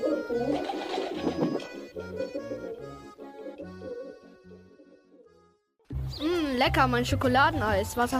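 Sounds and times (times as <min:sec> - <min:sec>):
pigeons cooing: 0:00.0 - 0:05.3
speech: 0:06.6 - 0:08.1.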